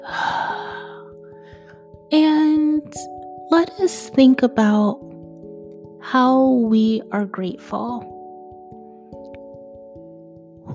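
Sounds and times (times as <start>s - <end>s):
deep breath in and out: 0.0s - 1.9s
speech: 2.9s - 5.1s, 6.1s - 8.1s.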